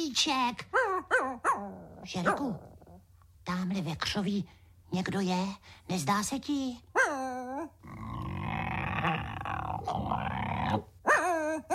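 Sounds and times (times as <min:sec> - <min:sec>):
speech: 0:00.1 - 0:02.7, 0:03.4 - 0:07.8, 0:10.7 - 0:10.9
large dog whiny yelps: 0:00.7 - 0:02.6, 0:07.0 - 0:07.8, 0:11.0 - 0:11.7
large dog growling: 0:07.8 - 0:10.9.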